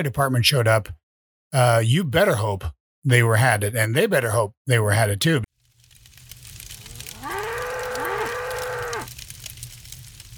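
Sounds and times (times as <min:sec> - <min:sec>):
speech: 0:00.0 - 0:05.4
cow mooing: 0:06.8 - 0:09.1.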